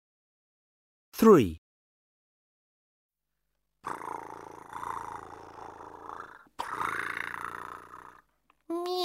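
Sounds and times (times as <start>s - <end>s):
speech: 1.2s - 1.6s
cat purring: 3.9s - 8.4s.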